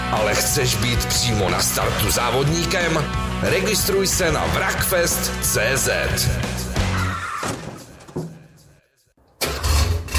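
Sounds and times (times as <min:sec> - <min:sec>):
speech: 0:00.1 - 0:06.7
classic car engine starting at a vintage car meet: 0:09.4 - 0:10.1.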